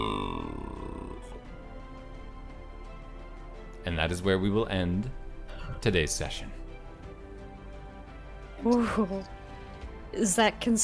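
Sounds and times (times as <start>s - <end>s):
human voice imitating a giant frog burp: 0.0s - 1.3s
speech: 3.9s - 5.2s, 5.8s - 6.6s, 8.6s - 9.4s, 10.1s - 10.8s.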